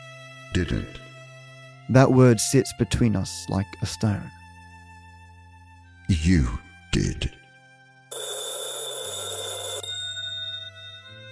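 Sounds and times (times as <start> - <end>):
speech: 0.6 - 1.1, 1.9 - 4.4, 6.1 - 7.4
old rotary wall telephone bell ringing: 8.1 - 11.3.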